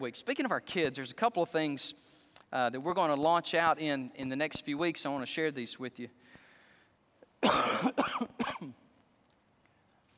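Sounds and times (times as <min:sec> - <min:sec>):
speech: 0:00.0 - 0:06.4, 0:07.4 - 0:08.8
harsh loud coughs: 0:07.4 - 0:08.9.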